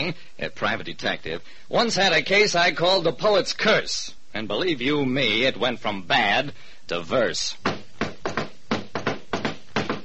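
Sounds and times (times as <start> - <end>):
speech: 0.0 - 7.8
knuckles knocking on a door: 7.6 - 10.0.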